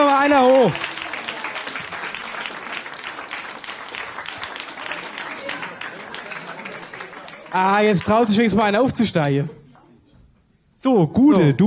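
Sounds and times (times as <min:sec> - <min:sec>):
audience applause at a live stage event: 0:00.0 - 0:09.3
speech: 0:00.2 - 0:00.9, 0:07.6 - 0:09.6, 0:10.8 - 0:11.6.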